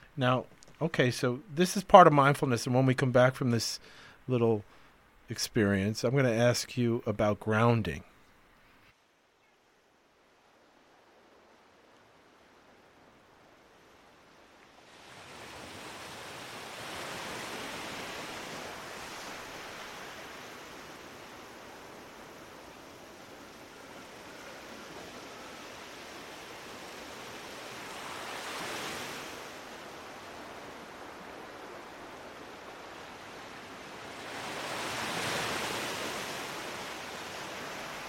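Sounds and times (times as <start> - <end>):
speech: 0.2 - 8.1
ocean waves: 10.4 - 38.0.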